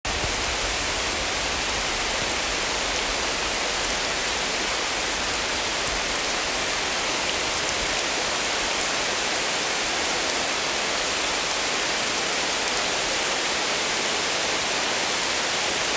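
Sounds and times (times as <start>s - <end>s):
rain on a deciduous forest: 0.0s - 15.9s.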